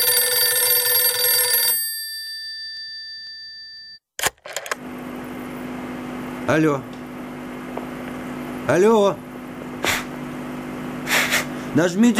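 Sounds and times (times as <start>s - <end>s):
telephone ringing with a bright metallic trill: 0.0s - 4.0s
speech: 6.5s - 7.0s, 8.7s - 9.2s, 11.7s - 12.1s.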